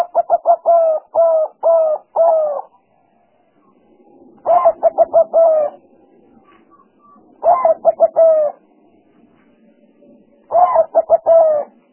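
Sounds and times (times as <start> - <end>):
spotted dove cooing: 0.0 - 2.9, 3.6 - 8.7, 10.5 - 11.9.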